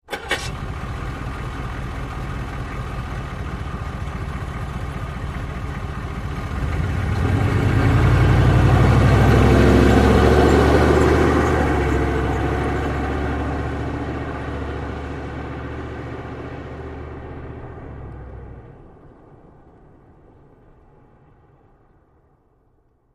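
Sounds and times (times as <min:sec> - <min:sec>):
Humvee engine starting and idling: 0:00.0 - 0:19.4.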